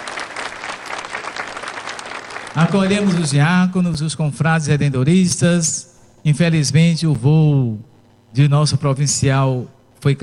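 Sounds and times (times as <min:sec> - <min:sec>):
audience applauding at a Catholic church gathering: 0:00.0 - 0:03.6
speech: 0:02.6 - 0:10.2.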